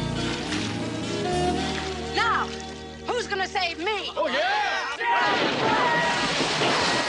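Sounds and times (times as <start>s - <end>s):
men leaping and splashing into a swimming pool: 0.2s - 2.7s, 5.2s - 7.0s
speech: 3.5s - 4.6s.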